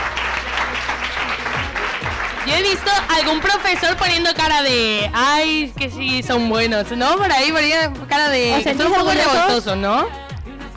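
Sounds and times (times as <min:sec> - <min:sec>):
group applauding at a student gathering: 0:00.0 - 0:05.0
speech: 0:02.5 - 0:10.2.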